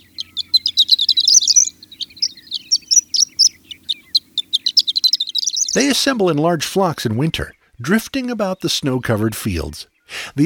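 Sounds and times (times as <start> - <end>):
faint low hum: 0.0 - 5.9
horned lark singing over wheat fields: 0.0 - 6.4
speech: 5.8 - 10.4.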